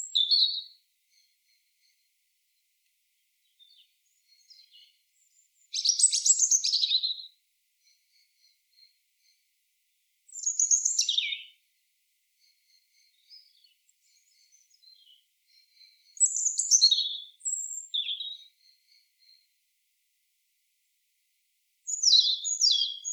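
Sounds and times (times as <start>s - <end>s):
European robin Erithacus rubecula song: 3.4s - 9.4s, 10.3s - 11.6s, 12.7s - 19.5s, 21.9s - 23.1s.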